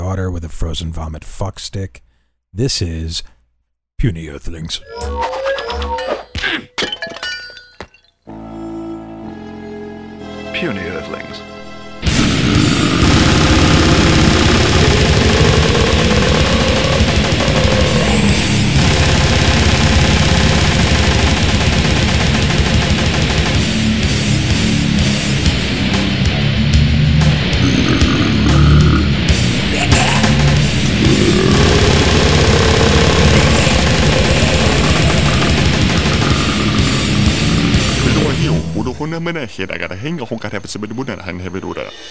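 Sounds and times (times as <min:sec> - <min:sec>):
speech: 0:00.1 - 0:03.4, 0:04.0 - 0:06.8, 0:10.6 - 0:11.5, 0:39.3 - 0:42.0
distorted noise music track with machine-gun-like drumming: 0:12.0 - 0:39.2
rapid machine-gun-like drumming: 0:12.1 - 0:38.8.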